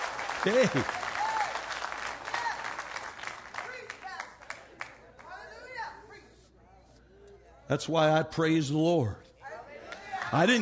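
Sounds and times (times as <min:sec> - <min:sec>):
cheering voices: 0:00.0 - 0:02.8
audience clapping in dense applause: 0:00.0 - 0:05.0
speech: 0:00.4 - 0:01.0, 0:07.7 - 0:09.3, 0:10.3 - 0:10.6.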